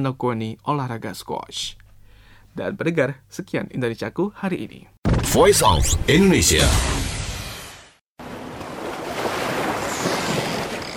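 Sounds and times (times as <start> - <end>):
speech: 0.0 - 1.8, 2.6 - 7.1
ocean waves breaking at the beach: 8.2 - 10.9.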